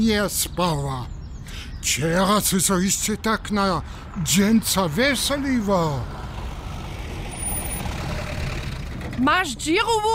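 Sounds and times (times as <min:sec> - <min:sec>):
speech: 0:00.0 - 0:06.3, 0:09.2 - 0:10.1
motor vehicle engine rumbling: 0:00.0 - 0:10.1.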